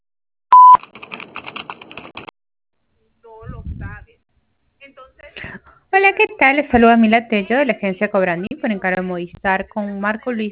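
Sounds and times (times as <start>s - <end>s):
voicemail beep: 0.5s - 0.8s
speech: 6.0s - 10.5s.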